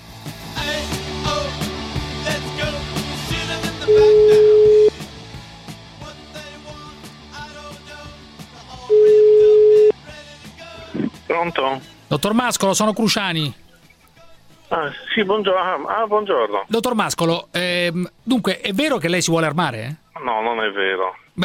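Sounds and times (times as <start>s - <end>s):
music with a rhythmic beat: 0.0s - 12.2s
speech: 0.2s - 1.0s, 11.4s - 13.6s, 14.7s - 21.4s
phone ringback tone: 3.9s - 4.9s, 8.9s - 9.9s.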